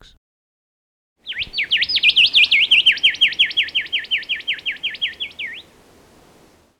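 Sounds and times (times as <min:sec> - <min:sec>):
Pachycephala rufiventris Rufous Whistler singing: 0:01.3 - 0:05.8.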